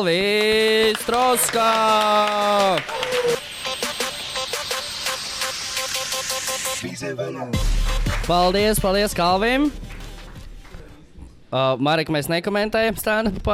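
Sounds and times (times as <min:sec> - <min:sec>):
speech: 0:00.0 - 0:03.5, 0:07.0 - 0:09.9, 0:11.5 - 0:13.5
crowd applauding at a stand-up comedy event: 0:00.0 - 0:05.7, 0:07.8 - 0:11.0
music: 0:00.6 - 0:11.3.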